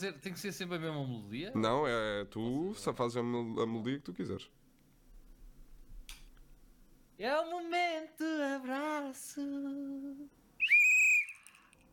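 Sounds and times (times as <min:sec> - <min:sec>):
speech: 0:00.0 - 0:04.6, 0:07.2 - 0:10.4
shrill whistle blast: 0:10.6 - 0:11.7.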